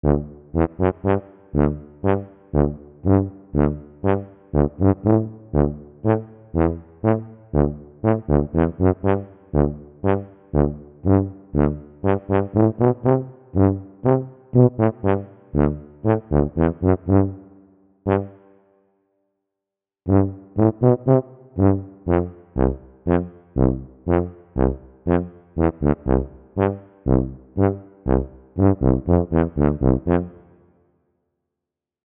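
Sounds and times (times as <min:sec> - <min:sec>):
trombone playing Alpine folk music: 0:00.0 - 0:17.5, 0:18.1 - 0:18.4, 0:20.1 - 0:30.5.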